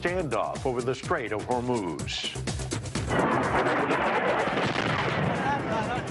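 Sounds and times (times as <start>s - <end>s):
speech: 0.0s - 2.5s, 3.1s - 6.1s
military gunfire: 3.0s - 5.8s
military strike explosions: 3.0s - 6.1s.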